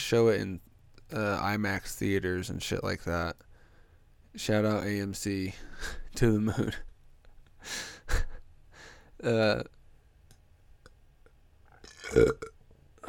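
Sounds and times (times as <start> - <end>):
speech: 0.1 - 3.5, 4.4 - 6.9, 7.6 - 8.3, 9.2 - 9.8, 12.1 - 13.0
burping: 11.8 - 13.0.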